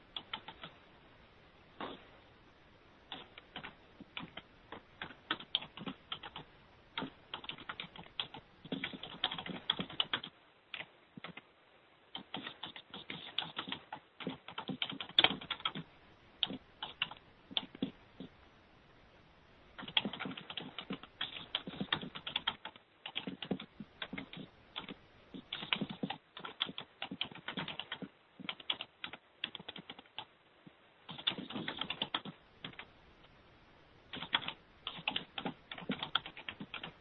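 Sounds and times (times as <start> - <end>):
person typing on a computer keyboard: 0.1 - 0.8, 3.1 - 11.4, 12.1 - 17.9, 19.8 - 30.3, 31.1 - 32.9, 34.1 - 36.9.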